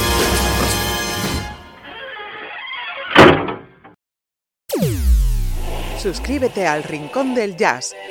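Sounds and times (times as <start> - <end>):
music: 0.0 - 1.8, 4.7 - 8.0
door shutting with a solid thunk: 2.1 - 3.8
speech: 6.0 - 8.0.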